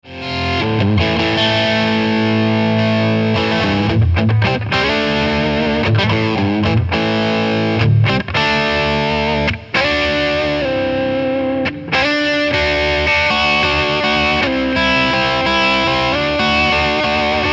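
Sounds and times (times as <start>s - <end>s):
Cyber Deluxe amplifier overdrive tone: 0.0s - 17.5s.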